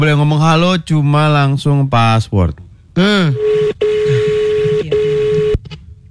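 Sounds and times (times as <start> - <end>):
speech: 0.0 - 3.9
telephone line tone as a call is placed: 3.2 - 5.6.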